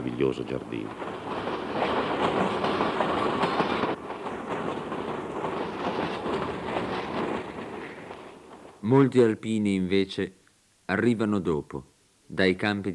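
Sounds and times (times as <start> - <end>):
train rolling along rails down the Adige valley: 0.0 - 9.1
speech: 0.2 - 1.3, 8.8 - 12.9.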